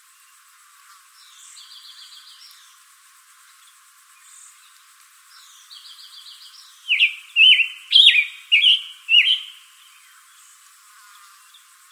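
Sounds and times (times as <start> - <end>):
scarlet tanager song in Arizona: 5.8 - 10.0.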